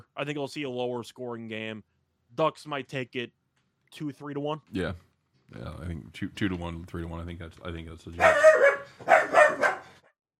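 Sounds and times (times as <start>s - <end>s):
speech: 0.2s - 9.4s
dog barking: 8.2s - 10.0s.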